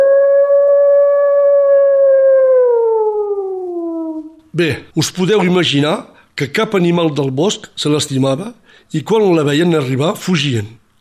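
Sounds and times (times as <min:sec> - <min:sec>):
wolf howling: 0:00.0 - 0:04.4
speech: 0:04.6 - 0:10.8.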